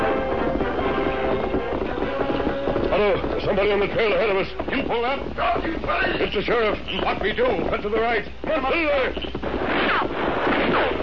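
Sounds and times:
steady rumble: 0.0s - 11.0s
speech: 3.0s - 9.6s
gunshots fired at riders on a trail: 9.4s - 11.0s.

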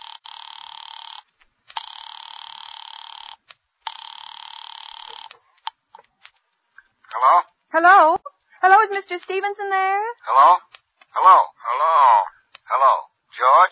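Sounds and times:
telephone line ringing while calling an office: 0.0s - 5.4s
faint clicks and ticks on a telephone line: 0.9s - 7.2s
speech: 7.2s - 8.2s, 8.9s - 12.8s.

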